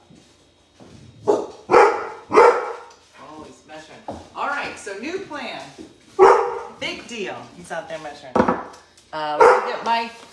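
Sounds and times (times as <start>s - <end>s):
dog barking: 1.2s - 2.9s, 6.2s - 6.8s, 9.4s - 10.0s
speech: 6.8s - 10.2s.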